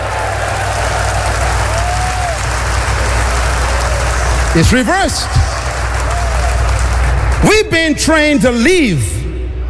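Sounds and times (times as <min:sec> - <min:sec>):
audience clapping hands: 0:00.0 - 0:07.6
speech: 0:04.6 - 0:05.5, 0:07.4 - 0:09.1.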